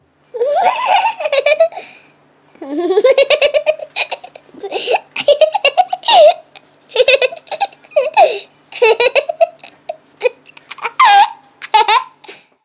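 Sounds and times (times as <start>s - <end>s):
baby laughing: 0.4s - 1.9s, 2.6s - 12.3s.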